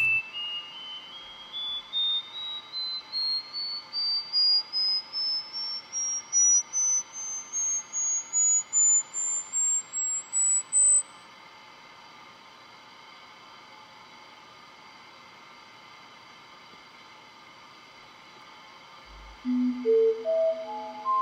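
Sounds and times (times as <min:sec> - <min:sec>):
thin high electronic test tone played to a mosquito under a microscope: 0:00.0 - 0:11.1, 0:19.1 - 0:21.1.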